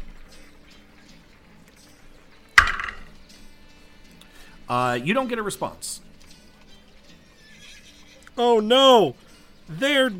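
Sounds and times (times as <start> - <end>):
single sharp wooden knock on a door: 2.6 - 3.1
speech: 4.7 - 6.1, 8.4 - 10.1.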